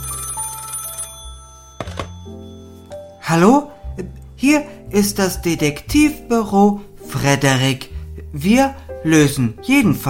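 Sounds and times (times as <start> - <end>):
telephone ringing in a detective office: 0.0 - 3.2
sharp clunks of a handset being lifted: 1.8 - 2.2
speech: 3.3 - 10.0.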